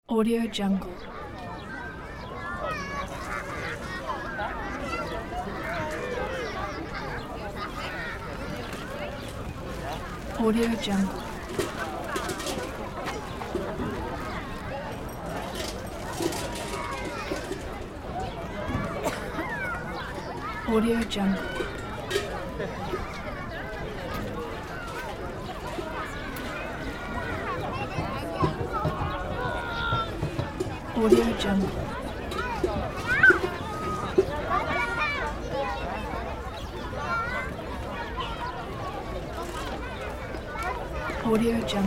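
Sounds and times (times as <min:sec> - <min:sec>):
playground ambience: 0:00.0 - 0:41.8.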